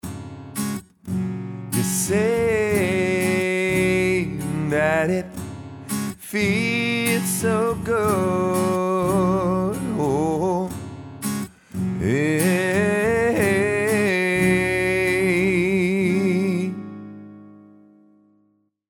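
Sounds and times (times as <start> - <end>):
person singing into a microphone with compression and EQ: 1.8 - 11.0, 11.9 - 17.0.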